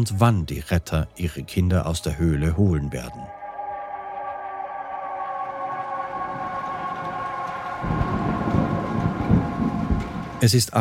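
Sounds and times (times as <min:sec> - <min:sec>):
speech: 0:00.0 - 0:03.4, 0:10.4 - 0:10.8
rain drumming on the roof of a park ranger station: 0:05.7 - 0:10.8.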